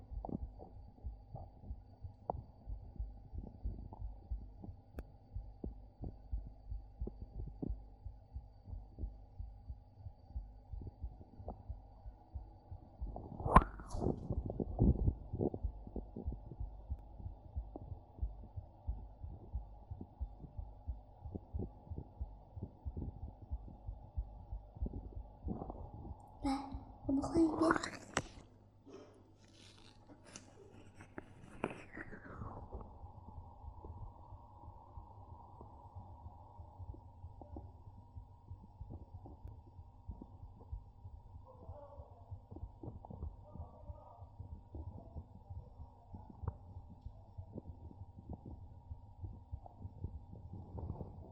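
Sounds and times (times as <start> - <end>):
woman's rapid heartbeat: 0.0 - 27.2, 31.6 - 51.2
speech: 27.2 - 28.0.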